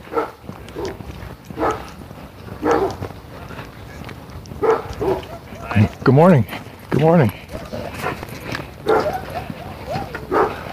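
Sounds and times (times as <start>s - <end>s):
soft outdoor background: 0.0s - 10.7s
black Labrador retriever yipping and barking: 2.6s - 3.0s, 4.6s - 5.8s, 7.5s - 8.2s, 8.8s - 10.6s
speech: 6.1s - 7.4s.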